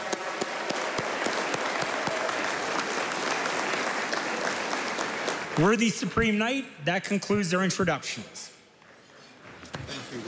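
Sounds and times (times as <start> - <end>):
large audience applauding: 0.0 - 6.3
speech: 5.6 - 8.5.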